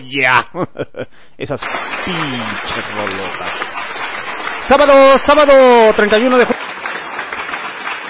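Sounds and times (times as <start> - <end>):
speech: 0.0 - 3.7, 4.7 - 6.6
laughter: 0.3 - 1.1
applause: 1.6 - 8.0.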